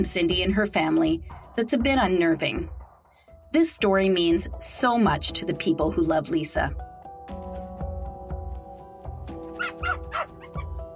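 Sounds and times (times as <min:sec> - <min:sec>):
speech: 0:00.0 - 0:02.8, 0:03.5 - 0:06.9
small dog barking and yipping indoors: 0:09.5 - 0:10.8.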